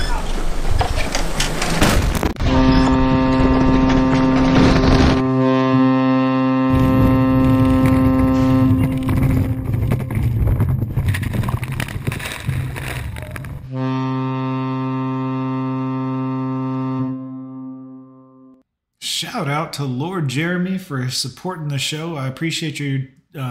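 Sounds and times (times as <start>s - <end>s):
rumbling noisy background: 0.0s - 5.3s, 6.7s - 13.8s
boat horn blaring: 2.4s - 10.4s, 13.7s - 18.6s
speech: 19.3s - 23.4s.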